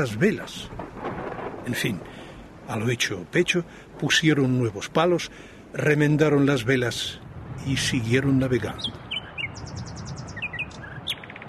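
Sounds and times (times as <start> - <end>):
speech: 0.0 - 0.8, 1.6 - 9.0
nightingale singing: 8.6 - 11.4.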